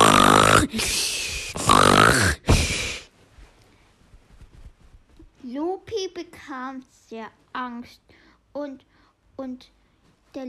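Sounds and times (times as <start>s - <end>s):
loud snoring imitated by a voice: 0.0s - 3.1s
speech: 6.4s - 10.4s.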